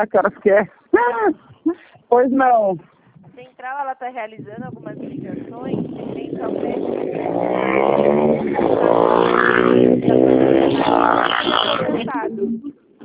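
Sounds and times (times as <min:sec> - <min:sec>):
person on a phone call: 0:00.0 - 0:07.3, 0:10.9 - 0:12.7
speech: 0:00.0 - 0:12.8
motorcycle engine roaring in traffic: 0:04.4 - 0:13.0.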